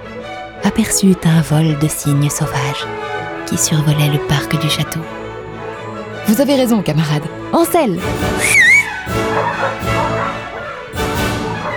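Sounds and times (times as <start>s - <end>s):
speech: 0.6s - 5.2s, 6.3s - 9.9s
hunting dogs barking and whimpering: 8.2s - 11.7s
riders whistling for dogs: 8.3s - 10.8s.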